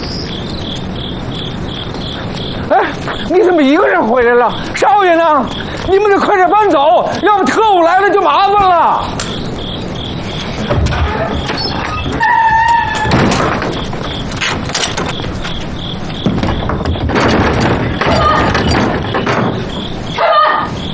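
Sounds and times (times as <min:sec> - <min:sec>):
busy noise: 0:00.0 - 0:20.9
faint chirping tones: 0:00.0 - 0:20.9
speech: 0:03.3 - 0:09.2
heavy pounding on a closed shabby door: 0:13.0 - 0:20.0.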